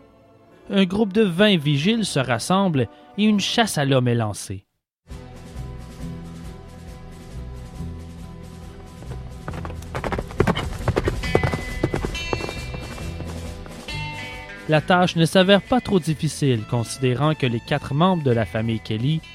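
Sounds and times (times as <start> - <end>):
speech: 0.7 - 4.7, 14.7 - 19.3
hooves of horses and a lame mare clip-clopping: 8.9 - 14.4.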